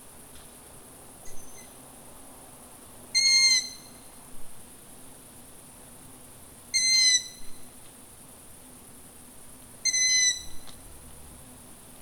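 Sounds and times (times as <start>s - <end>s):
long-eared owl giving thin squeaky creaking notes: 3.2s - 3.9s, 6.8s - 7.4s, 9.9s - 10.6s.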